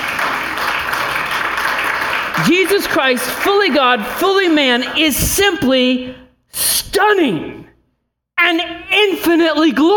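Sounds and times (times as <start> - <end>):
audience clapping: 0.0 - 5.2
speech: 2.4 - 7.6, 8.4 - 9.9.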